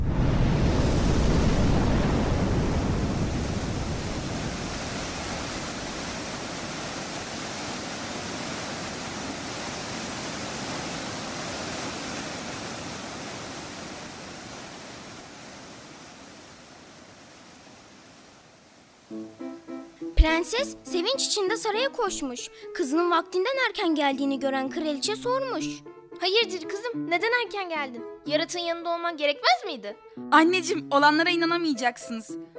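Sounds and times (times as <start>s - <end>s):
water rushing down a mountain: 0.1s - 22.1s
speech: 20.2s - 32.5s.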